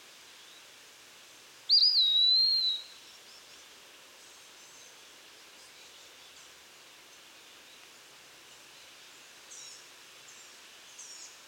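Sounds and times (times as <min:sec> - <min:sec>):
background hiss: 0:00.0 - 0:11.4
Eastern wood pewee Contopus virens whistle: 0:01.7 - 0:03.0.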